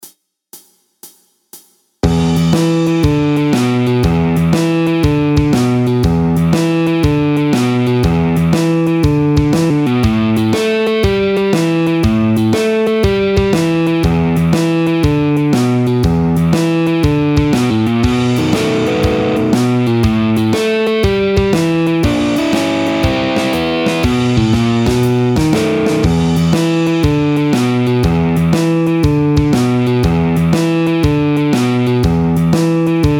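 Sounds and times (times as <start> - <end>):
blues music: 2.0 - 33.1.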